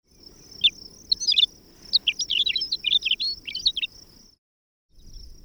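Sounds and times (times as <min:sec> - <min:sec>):
McCown's longspur on the ground: 0:00.1 - 0:04.3.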